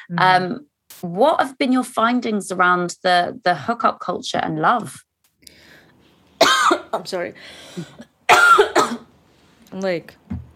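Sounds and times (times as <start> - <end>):
speech: 0.0 - 5.6, 6.4 - 8.4, 9.7 - 10.2
harsh coughs: 6.4 - 7.0, 8.3 - 9.1.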